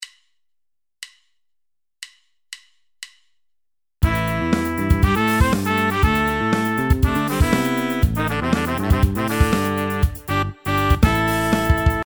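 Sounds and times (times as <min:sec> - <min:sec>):
horn section playing: 0:04.0 - 0:12.0.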